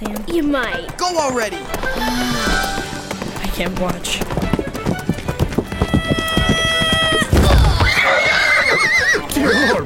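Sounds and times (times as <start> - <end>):
speech: 0.0 - 2.2, 3.6 - 5.0
horse hooves clip-clopping: 0.0 - 9.8
horse whinnying: 5.7 - 9.8.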